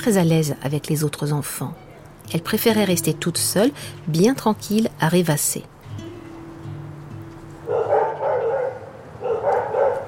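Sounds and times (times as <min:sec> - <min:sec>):
speech: 0:00.0 - 0:05.7
large dogs barking with deep woofs: 0:07.7 - 0:10.0.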